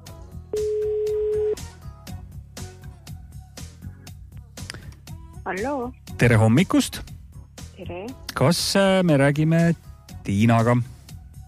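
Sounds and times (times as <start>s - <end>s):
telephone ringing tone: 0.6s - 1.6s
speech: 5.5s - 7.2s, 7.8s - 11.0s.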